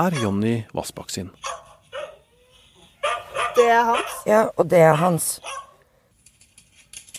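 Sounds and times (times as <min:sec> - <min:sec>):
dachshunds on a video barking in short yaps: 0:00.0 - 0:00.6, 0:01.4 - 0:05.9
speech: 0:00.0 - 0:01.6, 0:03.6 - 0:05.6.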